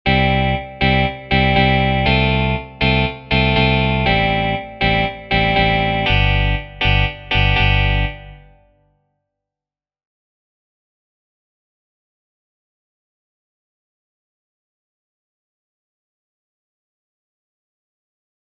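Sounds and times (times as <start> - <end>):
guitar: 0.1 - 8.7.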